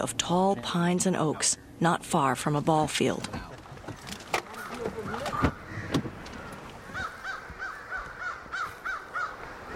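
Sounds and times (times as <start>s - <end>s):
speech: 0.0s - 3.5s
continuous outdoor hiss: 0.0s - 9.7s
several crows cawing at evening roost: 4.4s - 9.7s.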